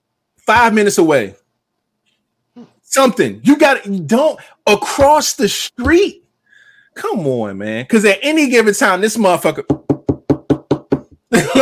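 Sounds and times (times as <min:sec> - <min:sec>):
speech: 0:00.5 - 0:01.4, 0:02.6 - 0:06.2, 0:07.0 - 0:09.9
firm knocking on a door: 0:09.6 - 0:11.2.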